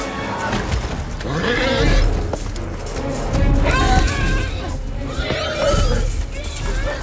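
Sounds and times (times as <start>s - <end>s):
horses screaming and whinnying in distress in a war film scene: 0.0s - 7.0s
loud chaotic din of rumbling and clattering in a war film scene: 0.0s - 7.0s.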